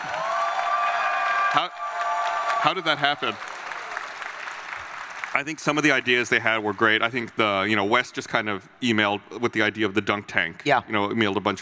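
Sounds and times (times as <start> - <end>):
live audience on a show floor applauding and cheering: 0.0 - 7.8
speech: 1.5 - 1.8, 2.6 - 3.5, 5.3 - 11.5.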